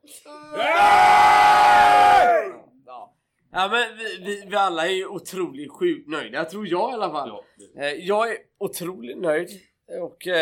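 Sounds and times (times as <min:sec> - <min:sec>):
group of people shouting together: 0:00.3 - 0:02.6
speech: 0:03.6 - 0:10.4.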